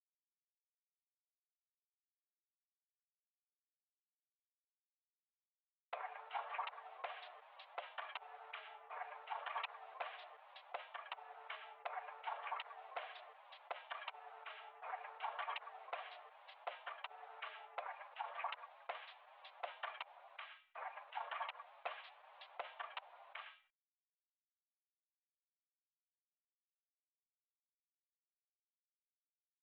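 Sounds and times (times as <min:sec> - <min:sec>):
percussion loop in C sharp minor: 0:06.0 - 0:23.7.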